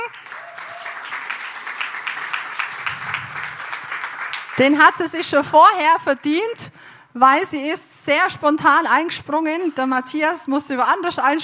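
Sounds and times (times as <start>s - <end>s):
audience applause: 0.0s - 4.6s
speech: 4.6s - 11.4s.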